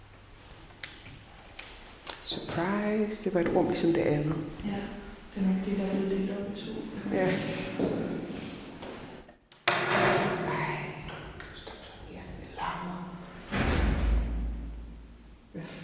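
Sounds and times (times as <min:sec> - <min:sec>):
noisy room tone: 0:00.0 - 0:15.8
speech: 0:02.3 - 0:08.4
door slamming shut: 0:09.7 - 0:10.5, 0:13.5 - 0:14.9.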